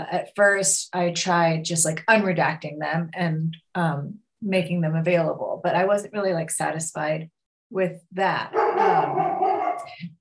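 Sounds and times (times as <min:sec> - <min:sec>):
speech: 0:00.0 - 0:10.1
dog giving a drawn-out throaty bark: 0:08.5 - 0:09.9.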